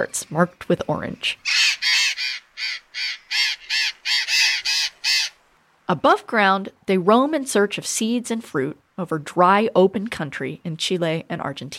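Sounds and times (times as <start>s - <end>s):
speech: 0.0s - 1.6s, 5.9s - 11.7s
burrowing parakeet giving harsh scratchy squawks: 1.4s - 5.4s.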